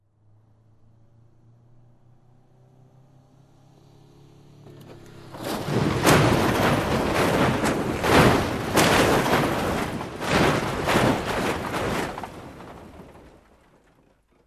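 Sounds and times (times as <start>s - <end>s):
car crashing on scrap metal: 4.7s - 14.4s.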